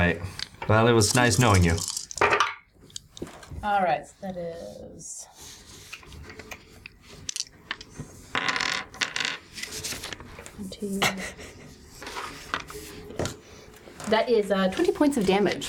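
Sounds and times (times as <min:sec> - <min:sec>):
speech: 0:00.0 - 0:01.9, 0:03.6 - 0:05.6, 0:10.6 - 0:11.6, 0:14.1 - 0:15.6
big handful of dice clattering on hard surface: 0:01.0 - 0:02.6, 0:07.3 - 0:07.5, 0:08.4 - 0:09.4.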